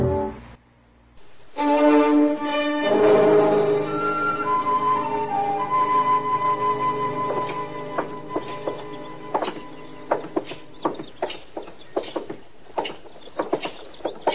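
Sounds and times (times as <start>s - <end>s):
faint sustained tone: 1.2s - 10.8s
horse hooves clip-clopping: 6.9s - 14.3s.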